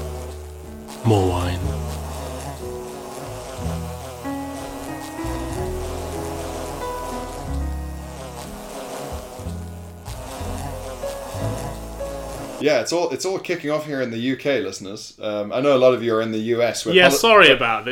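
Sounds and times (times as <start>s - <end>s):
bee swarm buzzing: 0.0s - 12.6s
speech: 1.0s - 2.0s, 12.6s - 17.9s.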